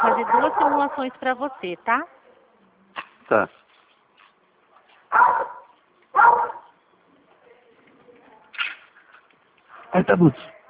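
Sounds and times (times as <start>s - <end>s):
mixed-breed dog barking: 0.0s - 1.1s, 5.1s - 6.8s
speech: 0.2s - 2.2s, 3.3s - 3.6s, 5.1s - 5.6s, 9.9s - 10.5s.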